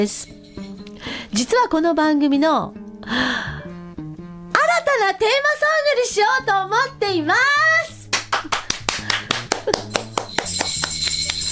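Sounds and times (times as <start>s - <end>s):
speech: 0.0s - 0.7s, 1.3s - 3.6s, 5.0s - 7.6s
bright high chime: 0.0s - 1.0s, 10.0s - 11.5s
two people clapping in a studio: 8.1s - 11.5s.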